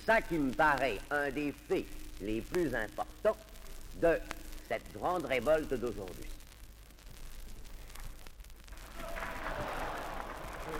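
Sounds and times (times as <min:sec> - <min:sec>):
speech: 0:00.0 - 0:06.4
audience applauding at a political speech: 0:08.8 - 0:10.7.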